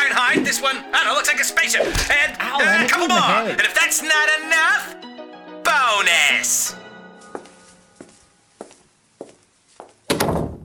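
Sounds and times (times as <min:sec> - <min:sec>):
speech: 0:00.5 - 0:05.1, 0:05.7 - 0:06.9
heavy door slamming shut: 0:01.9 - 0:02.3, 0:10.1 - 0:10.6
laughter: 0:02.2 - 0:03.8
footsteps walking away: 0:07.0 - 0:10.1.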